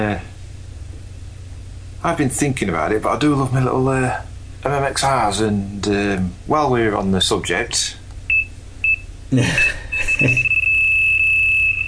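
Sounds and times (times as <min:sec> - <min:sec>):
speech: 0:00.0 - 0:00.3, 0:02.0 - 0:08.0, 0:09.3 - 0:10.5
alarm clock beeping: 0:08.3 - 0:11.8
alarm clock continuous piercing electronic tone: 0:08.3 - 0:11.8.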